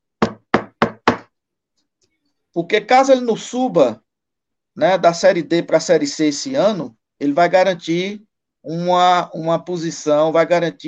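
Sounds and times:
knocking on wood: 0.2 - 1.3
speech: 2.6 - 4.0, 4.8 - 10.8.

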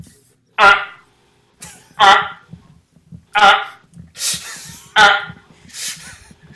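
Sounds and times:
speech: 0.6 - 0.8
person vocally imitating a dial-up modem: 0.6 - 1.0, 2.0 - 2.5, 3.4 - 3.8, 4.9 - 5.5.

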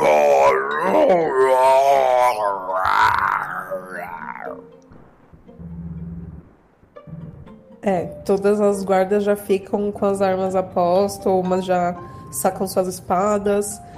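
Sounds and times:
voice imitating eerie murmurs, groans and wavering moans: 0.0 - 4.8
speech: 0.8 - 1.4, 7.8 - 13.9.

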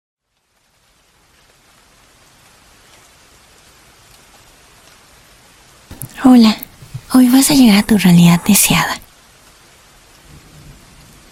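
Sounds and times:
steady dense rainfall: 0.2 - 11.3
speech: 6.2 - 9.0
low soft rumble of thunder: 10.2 - 11.3.

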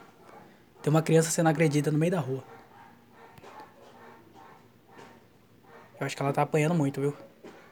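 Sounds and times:
dogs barking and yelping: 0.0 - 7.7
speech: 0.8 - 2.6, 6.0 - 7.3.

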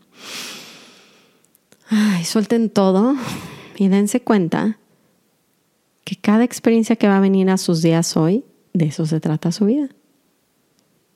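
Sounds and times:
long deep inhale: 0.1 - 1.4
speech: 1.9 - 4.8, 6.3 - 10.0.

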